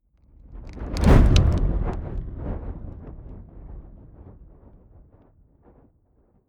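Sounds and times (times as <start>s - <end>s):
fire whoosh: 0.6s - 4.3s
fire crackling hard: 0.7s - 2.2s.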